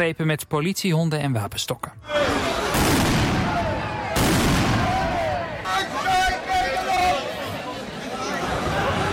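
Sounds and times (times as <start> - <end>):
speech: 0.0 - 3.2
crowd of demonstrators shouting and chattering on the street: 2.0 - 9.1
heavy fireworks exploding at a street protest: 2.7 - 5.1.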